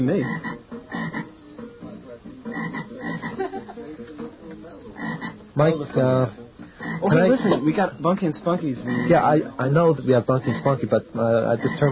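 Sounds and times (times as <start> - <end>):
speech: 0.0 - 0.6, 5.6 - 6.4, 7.0 - 11.9
bullfrogs croaking in a chorus: 0.0 - 1.4, 2.4 - 3.5, 5.0 - 5.5, 6.6 - 7.6, 8.8 - 9.3, 10.2 - 11.9
laughter: 2.9 - 4.4.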